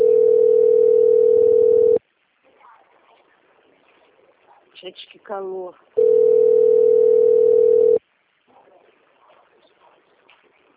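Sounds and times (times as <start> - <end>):
telephone ringing tone on an unanswered call: 0.0 - 2.0, 6.0 - 8.0
speech: 4.8 - 6.1.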